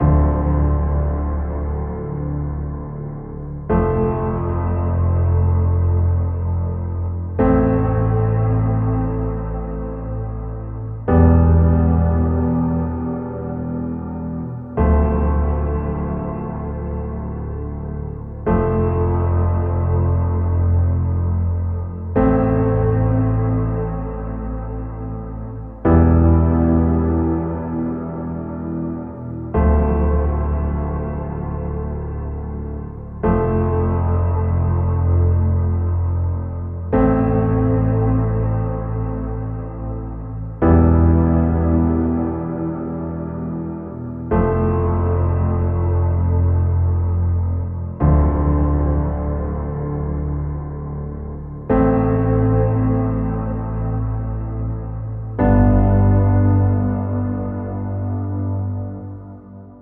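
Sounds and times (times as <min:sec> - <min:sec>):
mood piano with heavy tone in D minor: 0:00.0 - 0:59.8.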